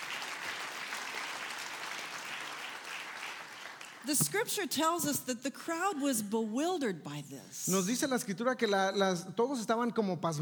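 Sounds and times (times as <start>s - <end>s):
audience applauding to give glory to God: 0.0s - 4.2s
speech: 4.0s - 10.3s.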